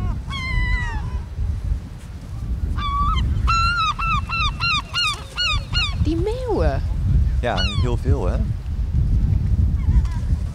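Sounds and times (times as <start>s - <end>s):
seagull calls over a pier: 0.0s - 1.2s, 2.8s - 6.5s, 7.6s - 8.0s
strong blustery wind rumbling against the microphone: 0.0s - 10.5s
speech: 7.4s - 8.6s.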